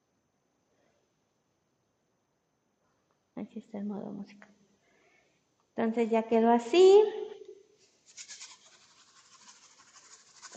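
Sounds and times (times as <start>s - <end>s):
speech: 3.4s - 4.6s, 5.8s - 7.2s
homemade shaker filled with chia seeds rattling: 8.0s - 10.5s.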